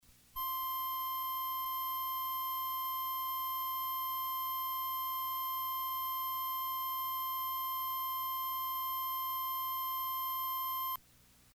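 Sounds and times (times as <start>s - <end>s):
autotuning tone from decks: 0.4s - 11.0s.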